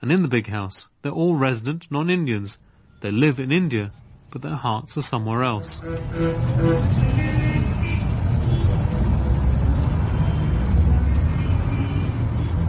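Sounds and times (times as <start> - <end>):
speech: 0.0 - 7.4
road traffic roar at a busy junction opposite Bombay University: 5.1 - 12.6
car horn toots at a busy junction: 5.7 - 8.8.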